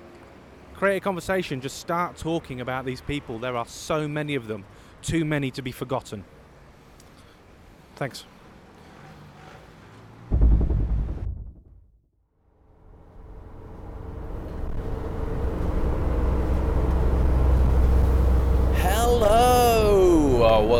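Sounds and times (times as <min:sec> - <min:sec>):
speech: 0:00.8 - 0:06.4, 0:08.0 - 0:08.3
car cruising at speed on a UK motorway at night: 0:06.3 - 0:11.8, 0:12.5 - 0:20.7
brief thump: 0:10.3 - 0:11.9.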